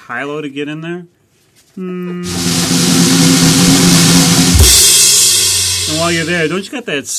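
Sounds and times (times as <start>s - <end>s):
speech: 0.1s - 1.2s, 1.8s - 2.7s, 5.9s - 7.1s
car engine revving while backing up: 2.3s - 6.4s
broad rushing noise: 2.3s - 6.6s.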